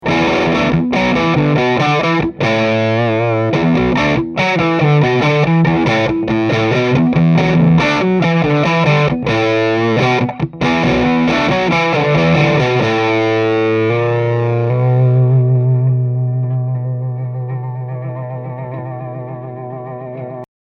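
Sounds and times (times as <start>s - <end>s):
electric guitar riff on bridge humbucker pickup: 0.0s - 20.5s.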